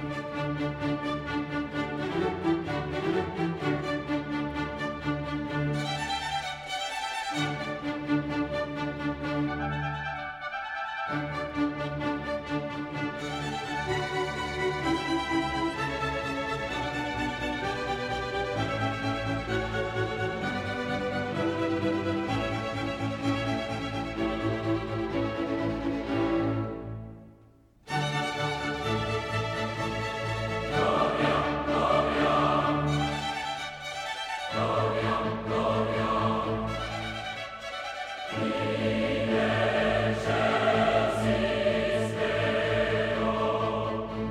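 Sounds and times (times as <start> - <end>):
full orchestra playing a dense sustained passage: 0.0 - 27.3, 27.9 - 44.2.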